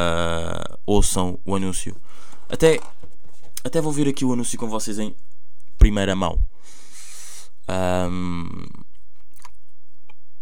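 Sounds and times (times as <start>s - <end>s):
speech: 0.0s - 3.0s, 3.6s - 6.8s, 7.7s - 8.9s
mouth chewing gum: 8.6s - 9.6s.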